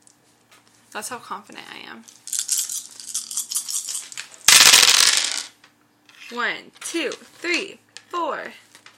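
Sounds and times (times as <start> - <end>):
speech: 1.0 - 2.3, 6.3 - 8.6
handful of dice rattling and clattering across a hard surface: 2.0 - 5.5
die spinning as it settles: 4.5 - 5.5.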